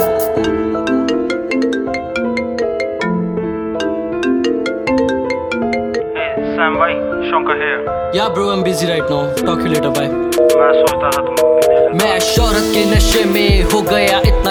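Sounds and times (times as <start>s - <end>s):
phone ringtone with bright bell-like melody: 0.0s - 8.0s, 10.3s - 12.4s
speech: 8.1s - 14.4s.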